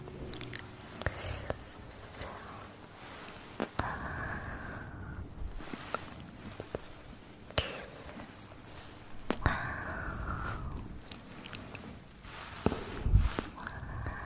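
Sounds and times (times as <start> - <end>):
soft airy hissing: 0.0 - 14.2
wet mouth clicks, smacks and chewing-like crackles: 0.3 - 1.6, 10.8 - 11.9.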